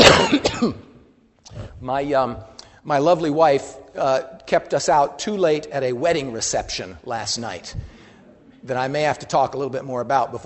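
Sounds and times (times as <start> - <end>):
cough: 0.0 - 1.0
raspy throat clearing: 0.0 - 1.8
speech: 0.6 - 0.9, 1.8 - 7.9, 8.6 - 10.4.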